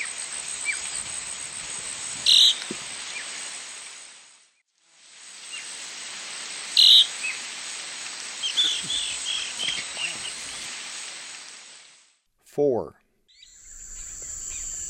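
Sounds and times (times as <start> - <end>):
mottle-backed elaenia calling: 0.0 - 3.3, 6.8 - 7.4, 8.4 - 11.0, 13.3 - 14.8
insects buzzing in the eastern lowlands of South America: 0.0 - 12.0, 13.3 - 14.8
speech: 12.6 - 13.0.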